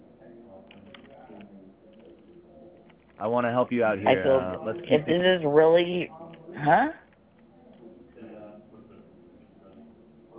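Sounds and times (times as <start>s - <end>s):
typing on a keyboard: 0.6s - 3.2s
speech: 3.2s - 7.0s.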